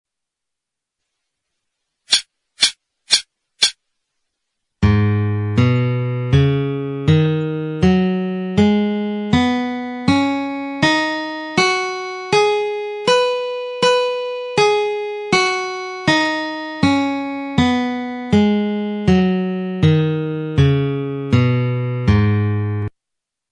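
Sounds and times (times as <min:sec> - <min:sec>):
guitar playing G sharp minor pentatonic scale: 0:04.8 - 0:22.9.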